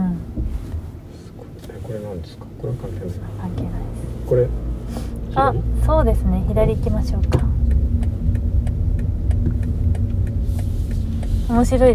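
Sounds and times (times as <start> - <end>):
electric car driving drone inside a moving car: 0.0 - 11.9
speech: 2.2 - 7.5, 11.5 - 11.9
soft ticking clicks: 5.1 - 11.9.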